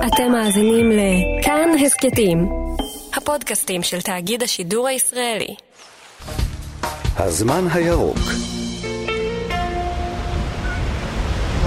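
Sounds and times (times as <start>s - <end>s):
speech: 0.0s - 6.3s, 7.2s - 8.6s
sea waves breaking on the shore: 9.9s - 11.6s.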